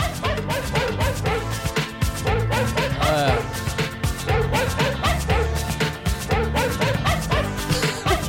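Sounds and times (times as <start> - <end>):
sampled dog barks in an electronic song: 0.0 - 8.2.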